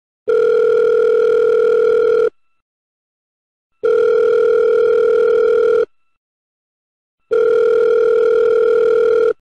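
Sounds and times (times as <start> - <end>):
iPhone ringtone: 0.3 - 2.3, 3.8 - 5.9, 7.3 - 9.3.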